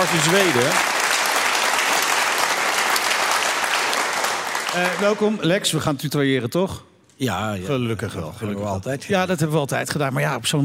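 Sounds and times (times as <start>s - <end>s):
speech: 0.0s - 1.0s, 4.7s - 10.6s
dense audience applause: 0.0s - 5.5s.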